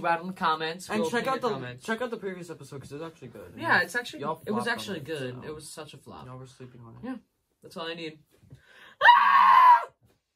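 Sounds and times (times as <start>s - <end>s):
speech: 0.0s - 8.4s
person screaming at a strained high pitch: 9.0s - 10.0s.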